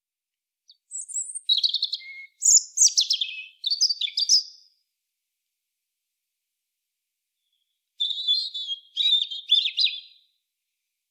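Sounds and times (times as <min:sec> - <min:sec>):
European robin singing, Erithacus rubecula: 0:00.7 - 0:04.8, 0:07.4 - 0:10.4.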